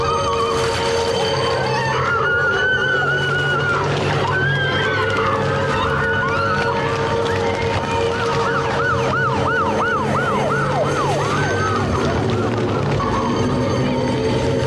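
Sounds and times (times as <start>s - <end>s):
police car siren wailing in rising-and-falling sweeps: 0.0s - 14.6s
rumble of traffic and engine noise: 0.0s - 14.6s.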